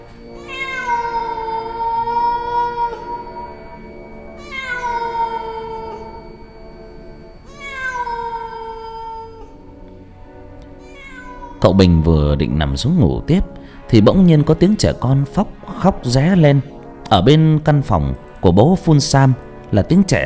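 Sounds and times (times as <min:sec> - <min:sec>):
cat yowling at night: 0:00.4 - 0:03.7, 0:04.4 - 0:06.4, 0:07.5 - 0:09.6, 0:10.8 - 0:11.8
speech: 0:11.6 - 0:20.2.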